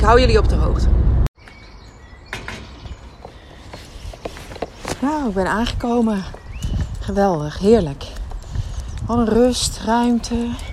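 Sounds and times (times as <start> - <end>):
speech: 0.1 - 1.0, 5.0 - 6.4, 7.1 - 8.2, 9.1 - 10.7
small birds chirping faintly in the open air: 1.4 - 10.7
footsteps crunching: 3.1 - 10.7.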